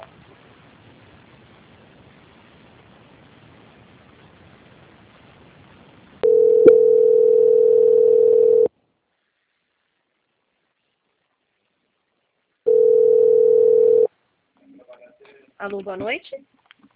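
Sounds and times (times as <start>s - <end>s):
telephone line tone while a bank's call is transferred: 6.2s - 8.7s, 12.7s - 14.1s
speech: 15.6s - 16.6s.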